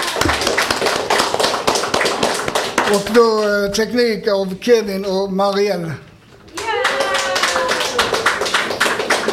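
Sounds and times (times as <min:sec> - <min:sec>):
small group applause with hands clapping: 0:00.0 - 0:03.6, 0:06.5 - 0:09.3
speech: 0:02.9 - 0:06.1.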